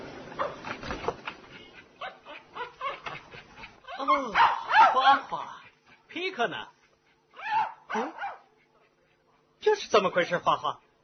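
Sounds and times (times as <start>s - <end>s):
dog barking and whimpering: 2.0s - 3.2s, 3.8s - 5.3s, 7.3s - 8.5s
speech: 4.1s - 5.5s, 6.1s - 6.8s, 9.8s - 10.9s.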